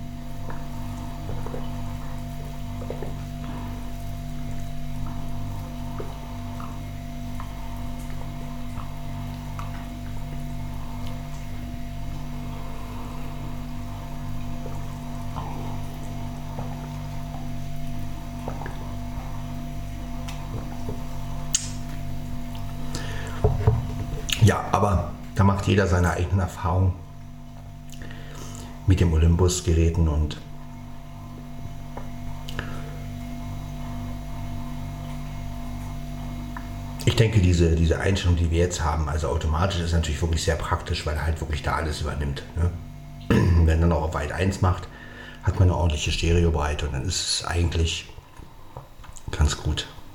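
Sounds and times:
low electrical hum: 0.0s - 50.1s
person sipping water: 0.3s - 24.4s, 27.5s - 28.8s, 30.6s - 37.0s
speech: 24.5s - 27.0s, 28.9s - 30.5s, 37.2s - 42.8s, 43.7s - 48.1s, 49.5s - 49.9s.

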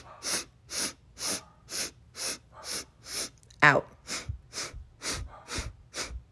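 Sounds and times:
quick sharp breaths in through the nose during a breathing exercise: 0.0s - 3.4s, 4.0s - 6.3s
speech: 3.7s - 3.9s.

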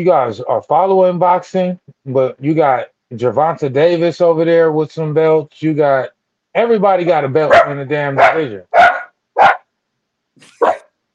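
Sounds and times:
speech: 0.0s - 8.8s
dog barking: 7.5s - 9.7s, 10.4s - 10.9s.

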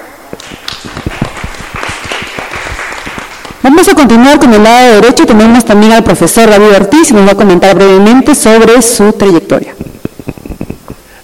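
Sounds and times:
theatre audience applauding a teacher: 0.3s - 3.9s
speech: 3.6s - 9.8s.

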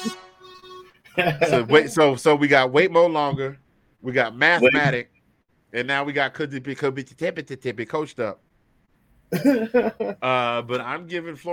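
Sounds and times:
brassy air horn blast: 0.0s - 0.9s
laughter: 1.2s - 2.0s, 9.4s - 10.2s
speech: 1.2s - 5.1s, 5.7s - 8.4s, 9.3s - 11.5s.

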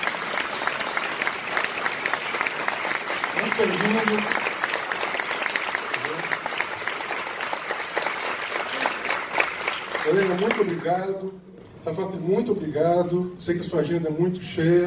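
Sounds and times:
audience applause: 0.0s - 11.1s
speech: 3.6s - 4.4s, 10.1s - 14.8s.

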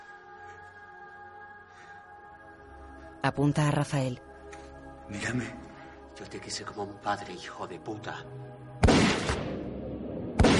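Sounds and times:
speech: 3.2s - 4.3s, 5.1s - 8.6s
shotgun blast: 8.8s - 9.7s, 10.3s - 10.5s.

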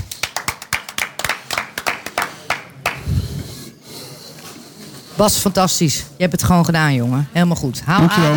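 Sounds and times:
small group applauding: 0.0s - 3.1s
speech: 5.2s - 8.3s.

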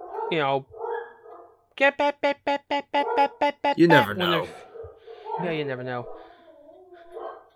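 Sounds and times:
dog whiny yelps: 0.0s - 1.6s, 3.0s - 7.5s
dogs barking: 0.0s - 1.7s, 3.0s - 5.8s, 7.1s - 7.5s
speech: 0.3s - 0.8s, 1.8s - 4.7s, 5.4s - 6.2s.

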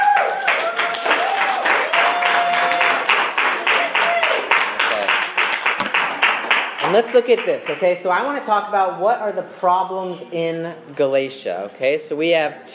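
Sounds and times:
faint tonal cheers or voices: 0.0s - 4.5s
room full of people applauding: 0.0s - 7.8s
speech: 6.9s - 12.7s.

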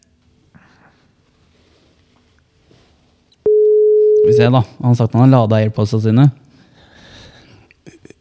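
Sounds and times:
electronic ringing tone of an outgoing phone call: 3.5s - 4.5s
speech: 4.2s - 6.4s.

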